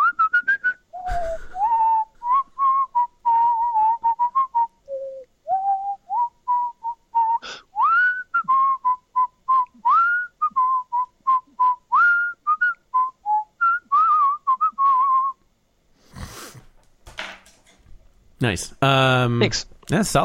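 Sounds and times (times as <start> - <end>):
person whistling a lively tune: 0.0 - 15.4
speech: 18.4 - 20.2.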